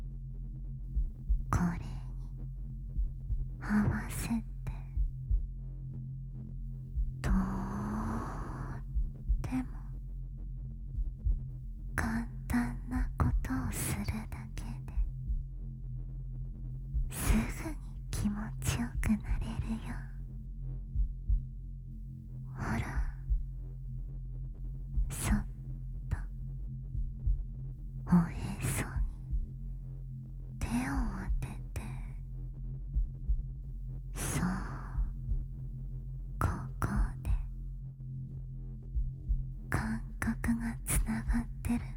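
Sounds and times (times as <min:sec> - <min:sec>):
human heartbeat in low pulses: 0:00.0 - 0:41.9
soft whispering: 0:01.1 - 0:02.6, 0:03.5 - 0:05.0, 0:07.2 - 0:10.0, 0:11.9 - 0:15.1, 0:17.0 - 0:20.4, 0:22.4 - 0:23.6, 0:24.9 - 0:26.4, 0:28.0 - 0:32.4, 0:34.1 - 0:37.7, 0:39.6 - 0:41.9
speech: 0:04.1 - 0:04.5.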